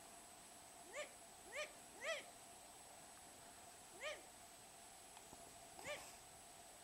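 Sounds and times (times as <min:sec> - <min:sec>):
long-eared owl alarm call: 0:00.8 - 0:02.3, 0:03.9 - 0:04.3.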